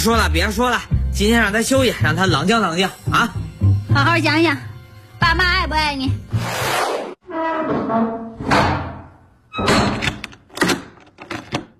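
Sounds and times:
speech: 0.0 - 6.8, 7.6 - 8.6
bedroom door creaking as it is shut at home: 7.2 - 11.7
bedroom door lock clunks and clicks: 9.5 - 11.7.

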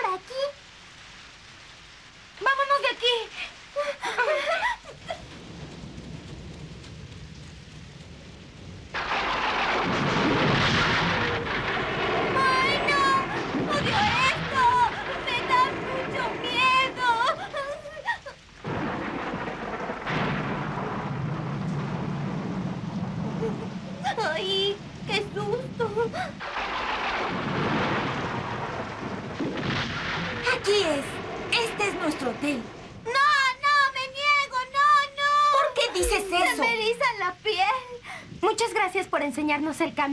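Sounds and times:
heavy rain pouring during a thunderstorm: 0.0 - 40.1
speech: 39.5 - 40.1.

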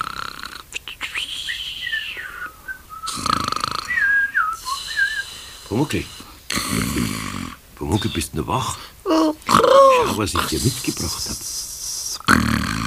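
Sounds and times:
person fake snoring while pretending to be asleep in bed: 0.0 - 0.8, 3.1 - 7.6, 11.2 - 12.8
speech: 5.7 - 9.2, 10.0 - 11.5.

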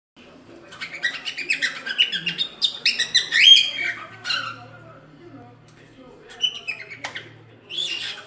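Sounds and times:
cockatiels chattering and whistling: 0.6 - 5.1, 6.2 - 8.2.

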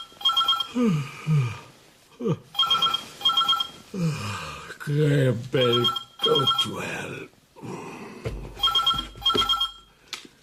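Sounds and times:
telephone bell ringing: 0.0 - 0.8, 2.6 - 3.9, 5.6 - 6.8, 8.6 - 10.0
speech: 0.7 - 1.6, 2.2 - 2.6, 3.9 - 8.5.

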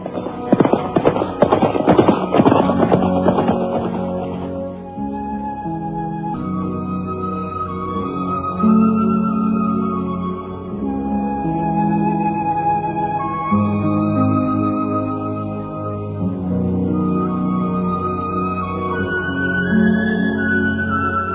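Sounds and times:
horses loaded with bundles of kapok setting off, hooves clip-clopping: 0.0 - 4.8
sustained musical tones: 0.0 - 21.3.

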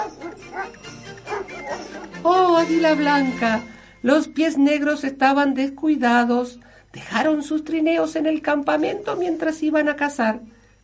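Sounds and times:
sled dogs barking and yelping as a team pulls a sled into a camp: 0.0 - 2.8
speech: 2.2 - 10.6.

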